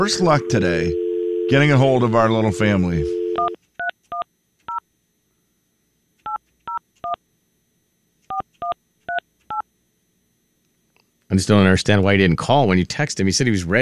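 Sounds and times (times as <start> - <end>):
speech: 0.0 - 3.2, 11.3 - 13.7
touch-tone beeps as a telephone number is dialed: 2.3 - 4.3, 8.3 - 9.6.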